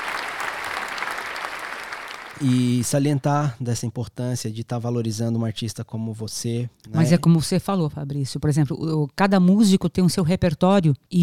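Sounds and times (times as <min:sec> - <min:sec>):
applause from many hands: 0:00.0 - 0:03.2
speech: 0:02.4 - 0:11.2.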